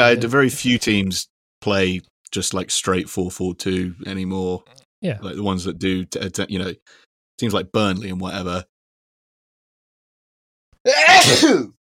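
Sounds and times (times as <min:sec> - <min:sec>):
speech: 0:00.0 - 0:08.7, 0:10.8 - 0:11.8
person sneezing loudly: 0:10.9 - 0:11.7.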